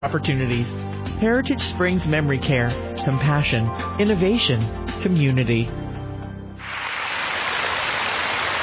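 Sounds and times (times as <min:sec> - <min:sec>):
speech: 0:00.0 - 0:05.8
spring rain in a dense even downpour: 0:06.6 - 0:08.6.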